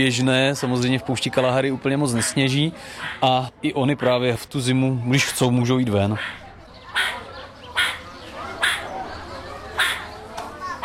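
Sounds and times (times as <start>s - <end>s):
speech: 0.0s - 6.4s
meerkat alarm calls in a zoo enclosure in winter: 1.4s - 2.4s, 6.2s - 9.0s, 9.8s - 10.8s.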